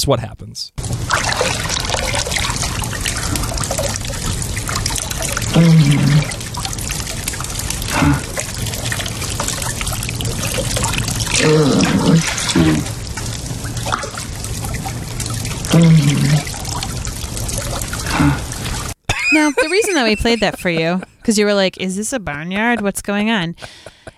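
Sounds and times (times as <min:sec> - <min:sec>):
speech: 0:00.0 - 0:02.3, 0:05.5 - 0:06.4, 0:11.4 - 0:12.9, 0:15.7 - 0:16.2, 0:19.5 - 0:24.0
water poured over a person and splashing: 0:00.8 - 0:19.0
person grunting, moaning and crying: 0:07.9 - 0:08.4, 0:11.4 - 0:12.9, 0:15.7 - 0:16.4, 0:18.1 - 0:18.5
laughter: 0:19.1 - 0:21.3.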